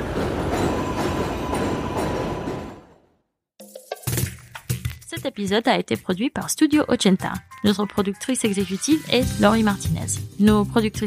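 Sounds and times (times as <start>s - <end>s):
train rumbling overhead near a railway station: 0.0s - 3.2s
speech: 5.2s - 11.0s.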